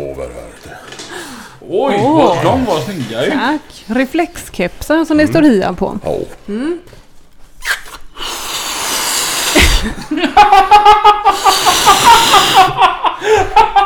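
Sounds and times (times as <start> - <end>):
speech: 1.7 - 7.0, 9.8 - 13.8
rubber balloon squeaking as it is handled: 7.6 - 10.0
laughter: 9.6 - 13.8.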